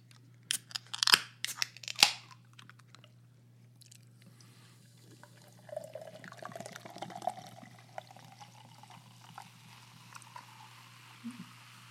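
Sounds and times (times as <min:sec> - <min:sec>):
hard seltzer can opening: 0:00.5 - 0:02.9
hard seltzer pouring into a glass and fizzing: 0:05.0 - 0:11.8.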